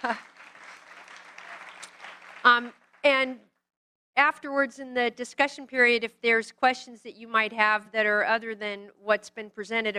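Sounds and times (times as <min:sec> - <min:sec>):
speech: 0:00.0 - 0:00.3, 0:02.4 - 0:03.5, 0:04.2 - 0:09.9
audience clapping: 0:00.0 - 0:03.3.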